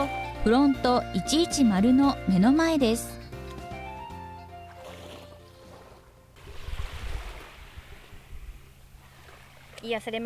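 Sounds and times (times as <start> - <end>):
speech: 0.4 - 3.2, 9.9 - 10.2
calm sea waves lapping on Susami swimming beach: 4.5 - 10.2.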